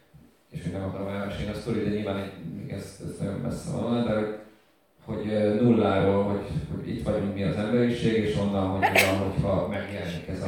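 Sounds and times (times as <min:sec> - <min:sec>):
conversational speech: 0:00.5 - 0:10.4
sneeze: 0:08.8 - 0:09.4.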